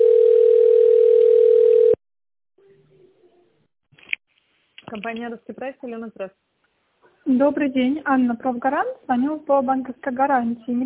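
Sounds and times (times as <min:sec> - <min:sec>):
telephone ringing tone while a call connects to an operator: 0:00.0 - 0:02.0
speech: 0:05.0 - 0:06.6, 0:07.2 - 0:10.8.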